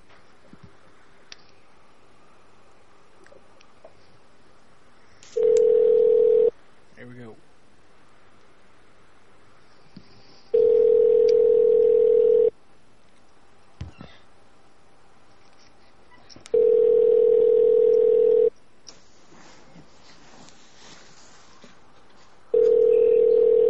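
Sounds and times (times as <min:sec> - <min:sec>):
steady electronic telephone ringback tone: 0:05.4 - 0:06.5, 0:10.6 - 0:12.5, 0:16.5 - 0:18.5, 0:22.5 - 0:23.6.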